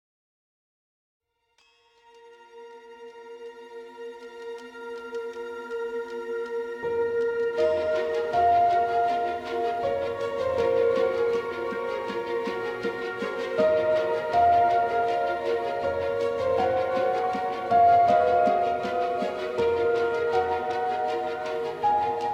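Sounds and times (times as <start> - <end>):
queue hold music loop: 6.9 - 22.3.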